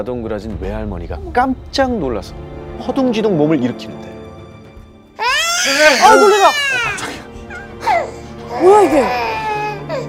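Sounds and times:
speech: 0.0s - 4.1s, 5.6s - 7.2s, 7.8s - 9.4s
baby letting out a piercing shrill scream: 5.2s - 10.0s.

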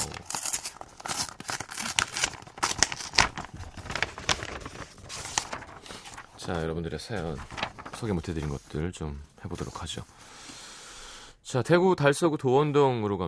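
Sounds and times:
taped paper envelope being torn open: 0.0s - 6.6s, 7.2s - 8.6s
speech: 6.5s - 10.4s, 11.5s - 13.2s.

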